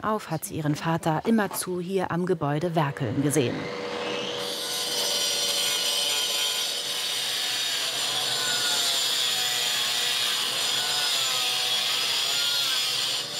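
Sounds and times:
speech: 0.0 - 3.9
power tool grinding mortar from bricks: 2.8 - 13.3.

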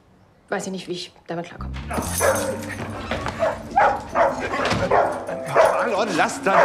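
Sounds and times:
speech: 0.5 - 6.6
dog barking in high yips: 2.0 - 5.9, 6.5 - 6.6.

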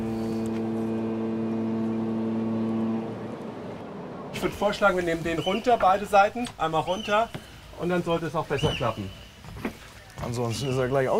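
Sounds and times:
motor droning as a boat is taken out of the water: 0.0 - 5.5
speech: 4.4 - 9.2, 10.3 - 11.1.

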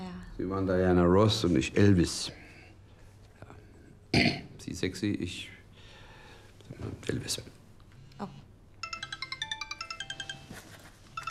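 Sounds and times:
speech: 0.4 - 2.4, 4.7 - 5.6, 6.7 - 7.6, 8.2 - 8.4
mobile phone electronic ringtone melody: 8.8 - 11.2.

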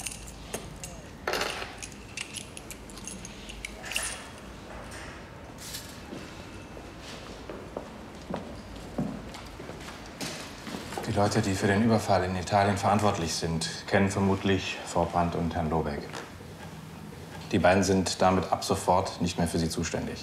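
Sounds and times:
keys jangling and clinking as they are handed over: 0.0 - 4.6
speech: 11.2 - 16.2, 17.5 - 20.2.

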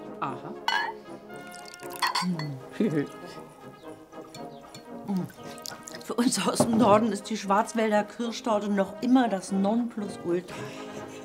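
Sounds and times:
speech: 0.2 - 0.8, 2.2 - 3.5, 6.1 - 11.2
glass clinking: 0.7 - 2.6, 4.3 - 5.0
kirsch schnapps pouring from a bottle: 1.3 - 2.5, 4.8 - 6.1.

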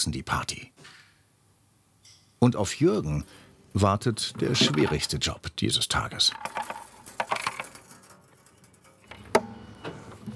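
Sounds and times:
speech: 0.0 - 1.0, 2.4 - 6.8
loose coins rattling inside a container in a shop: 6.2 - 9.2.

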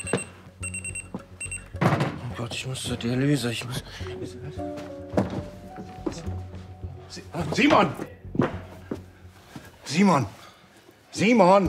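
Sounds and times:
alarm clock ringing with high-pitched electronic beeps: 0.0 - 1.8
speech: 2.4 - 6.4, 7.1 - 8.1, 9.9 - 10.4, 11.2 - 11.6.

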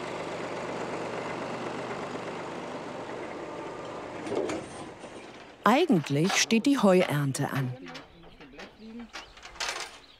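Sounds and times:
tractor engine running in the Spreewald: 0.0 - 10.1
clank or knock: 5.3 - 10.1
speech: 5.6 - 8.0.

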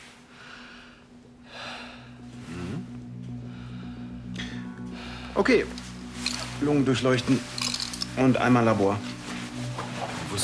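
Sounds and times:
patient breathing deeply in and out during a medical check: 0.0 - 6.1
low steady hum: 0.0 - 10.2
speech: 5.4 - 5.8, 6.6 - 7.6, 8.2 - 9.1.

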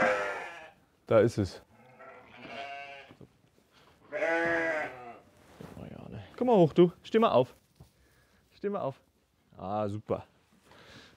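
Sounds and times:
sheep bleating in a barn holding a flock with a lamb: 0.0 - 0.8, 1.7 - 3.3, 4.1 - 5.2
speech: 1.1 - 1.7, 6.4 - 7.6, 8.6 - 10.3.

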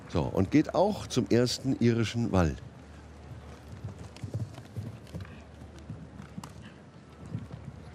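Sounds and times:
speech: 0.1 - 2.7
horse hooves galloping on an eventing cross-country course: 3.0 - 7.9.

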